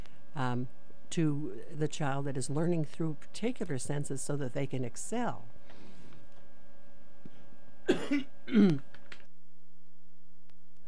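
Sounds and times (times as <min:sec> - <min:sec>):
faint steady hum: 0:00.0 - 0:10.8
speech: 0:00.4 - 0:05.5, 0:07.9 - 0:08.9
person coughing: 0:07.9 - 0:08.8.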